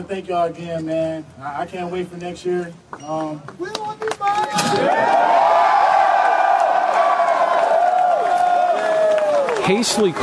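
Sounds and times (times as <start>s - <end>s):
speech: 0.0s - 5.7s, 9.7s - 10.2s
large outdoor crowd cheering and whooping: 4.6s - 9.8s.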